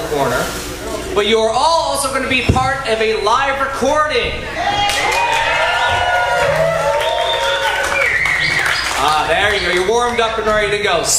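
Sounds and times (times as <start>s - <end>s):
speech: 0.2s - 5.2s, 9.0s - 11.1s
live crowd cheering with whoops and shouts: 4.4s - 10.7s.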